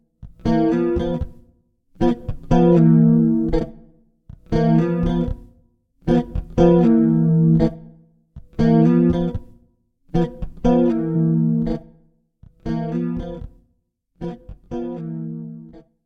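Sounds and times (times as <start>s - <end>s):
electric guitar chords with stereo EQ, pitch and delay effects: 0.4s - 1.4s, 2.0s - 3.8s, 4.4s - 5.5s, 6.1s - 7.9s, 8.5s - 9.5s, 10.2s - 11.9s, 12.6s - 13.5s, 14.2s - 15.8s.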